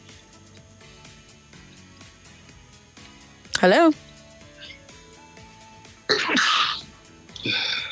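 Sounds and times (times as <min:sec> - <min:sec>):
speech: 0:03.6 - 0:04.0
person sneezing: 0:06.1 - 0:07.9.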